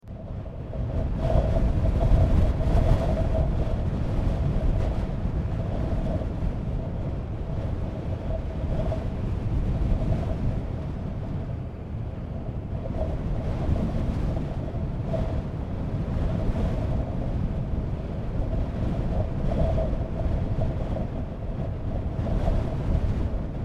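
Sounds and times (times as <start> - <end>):
large gust of wind blowing in the Sahara desert: 0.1 - 23.6.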